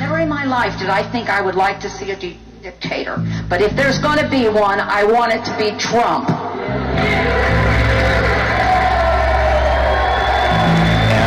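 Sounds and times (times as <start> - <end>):
speech: 0.4 - 6.4
large audience at a speech event giving a standing ovation, cheering and whooping: 6.6 - 11.2.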